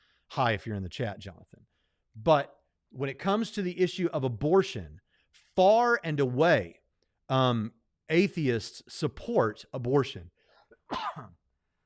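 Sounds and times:
speech: 0:00.3 - 0:11.4
sneeze: 0:10.7 - 0:11.4.

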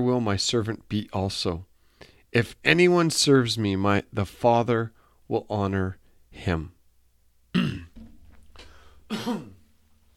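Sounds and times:
speech: 0:00.0 - 0:06.8, 0:09.1 - 0:09.5
person coughing: 0:07.5 - 0:08.0, 0:09.1 - 0:09.7.

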